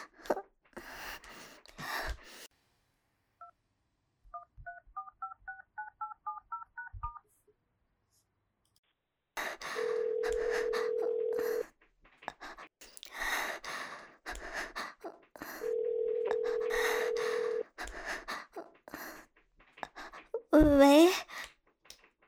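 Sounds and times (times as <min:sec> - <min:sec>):
breathy sighs and panting: 0:00.0 - 0:02.5, 0:09.4 - 0:21.6
phone ringback tone: 0:09.8 - 0:11.6, 0:15.6 - 0:17.6.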